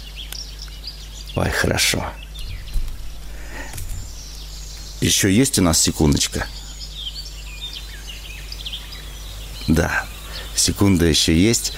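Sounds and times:
birds singing softly with chirps and twitters: 0.0s - 11.7s
speech: 1.4s - 2.2s, 5.0s - 6.6s, 9.7s - 11.7s.

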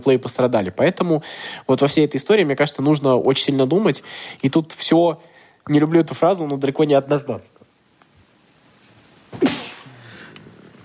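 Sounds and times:
speech: 0.0s - 7.5s
sneeze: 9.3s - 10.1s.

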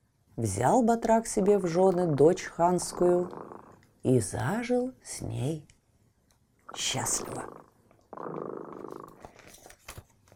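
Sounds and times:
speech: 0.4s - 5.7s, 6.7s - 9.2s
cat purring: 1.6s - 3.9s, 6.7s - 9.3s.

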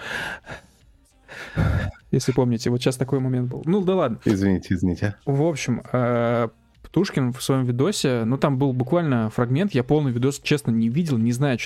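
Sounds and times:
person imitating heavy breathing of a cartoon character into a microphone: 0.0s - 2.0s
speech: 2.1s - 11.6s.

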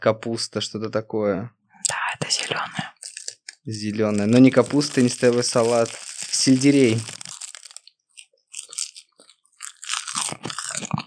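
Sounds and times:
speech: 0.0s - 1.6s, 2.2s - 3.0s, 3.6s - 7.2s
crunching brittle sheets of dried sushi seaweed: 4.1s - 11.0s.

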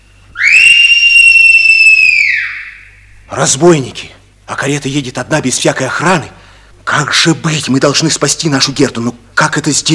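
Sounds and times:
bird whistling long clear note: 0.0s - 3.2s
speech: 3.3s - 9.9s.

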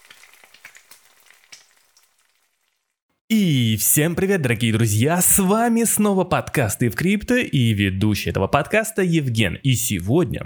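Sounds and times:
hash brown frying in a pan: 0.0s - 3.0s
speech: 3.3s - 10.4s.

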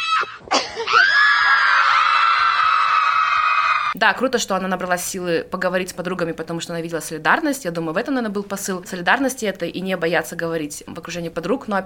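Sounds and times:
woman screaming out of anger: 0.0s - 4.0s
speech: 4.0s - 11.8s.

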